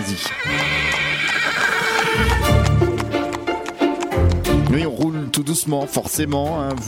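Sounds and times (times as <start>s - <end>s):
speech: 0.0s - 1.1s, 5.4s - 6.8s
horse pulling a wooden caravan whinnying on Morbihan country roads: 0.0s - 2.8s
horse hooves clip-clopping on small country roads: 0.0s - 6.8s.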